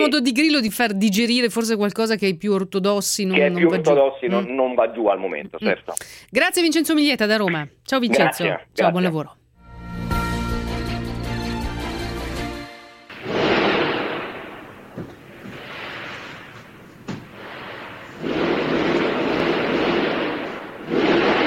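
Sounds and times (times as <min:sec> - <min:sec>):
speech: 0:00.0 - 0:09.4
short passage of music: 0:09.6 - 0:13.1
gunfire during a coordinated double terrorist attack in Tehran: 0:13.1 - 0:16.4, 0:17.3 - 0:21.4
loud rushing noise: 0:13.1 - 0:16.6, 0:17.4 - 0:21.4.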